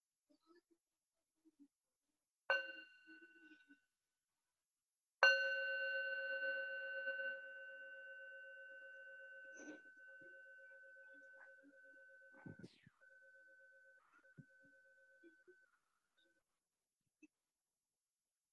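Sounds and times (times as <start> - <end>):
bell being struck: 2.5 - 3.6, 5.2 - 13.4.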